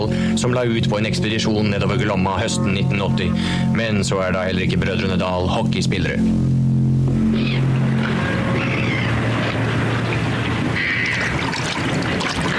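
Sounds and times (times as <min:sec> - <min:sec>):
speech: 0:00.0 - 0:06.7
low hum: 0:00.0 - 0:12.5
paddle splashing through water on the Glomma river: 0:08.0 - 0:12.5.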